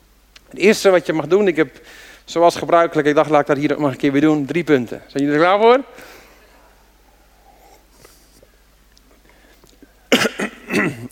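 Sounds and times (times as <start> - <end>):
speech: 0.5 - 6.2
harsh coughing: 10.1 - 11.1
rough throat clearing: 10.1 - 11.1.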